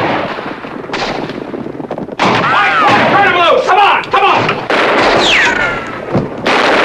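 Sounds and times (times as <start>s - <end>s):
loud sharp gunshots in a shootout with bandits: 0.0s - 1.6s, 2.2s - 3.6s, 4.2s - 6.8s
people shouting: 2.4s - 4.5s.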